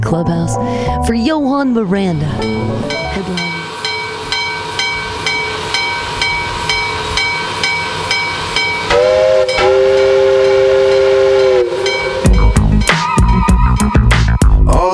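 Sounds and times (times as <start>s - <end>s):
train chugging: 0.0s - 14.9s
speech: 0.1s - 3.6s
train steam whistle blowing: 2.4s - 13.8s.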